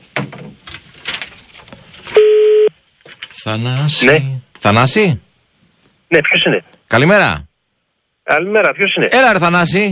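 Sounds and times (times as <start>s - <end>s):
phone line ringback tone: 2.2s - 2.7s
speech: 3.4s - 5.2s, 6.1s - 7.5s, 8.3s - 9.9s.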